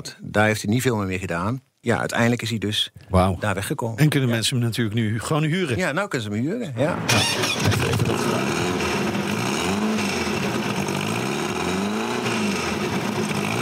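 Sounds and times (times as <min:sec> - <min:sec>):
speech: 0:00.0 - 0:08.9
old car engine cranking and idling throatily: 0:06.9 - 0:13.6.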